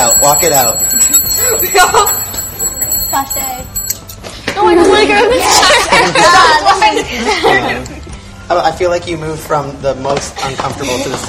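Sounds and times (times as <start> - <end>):
bright metallic bell ringing: 0.0 - 4.2
speech: 0.2 - 2.2, 3.1 - 3.8, 4.6 - 7.9, 8.5 - 11.2
laughter: 4.7 - 8.0.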